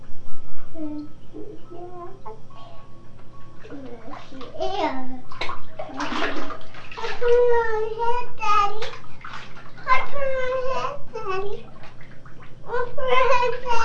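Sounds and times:
young child babbling: 0:00.7 - 0:02.9, 0:03.8 - 0:05.2, 0:07.2 - 0:08.8, 0:09.8 - 0:11.6, 0:12.7 - 0:13.8
water splashing in a bathtub: 0:03.1 - 0:13.8
speech: 0:04.6 - 0:05.6, 0:07.2 - 0:09.0, 0:12.8 - 0:13.8.

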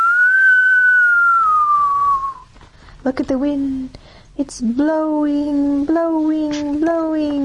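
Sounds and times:
long clear whistle with pitch sliding lower: 0:00.0 - 0:02.5
speech: 0:03.0 - 0:07.4.

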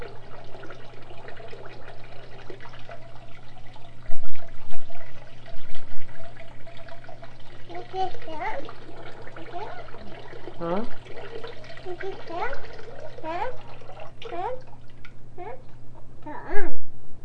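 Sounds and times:
water splashing in a bathtub as a young child plays: 0:00.0 - 0:15.8
young child babbling and cooing: 0:09.4 - 0:10.0, 0:11.9 - 0:12.6, 0:13.2 - 0:13.6, 0:14.3 - 0:14.6, 0:15.4 - 0:15.6, 0:16.2 - 0:16.8.

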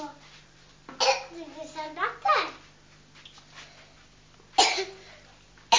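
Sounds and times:
person coughing: 0:01.0 - 0:01.3, 0:04.6 - 0:05.7.

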